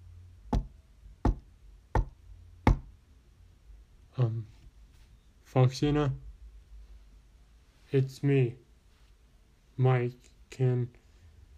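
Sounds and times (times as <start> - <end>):
firm knocking on a door: 0.5 - 2.9
speech: 4.2 - 4.6, 5.5 - 6.2, 7.9 - 8.6, 9.8 - 11.0.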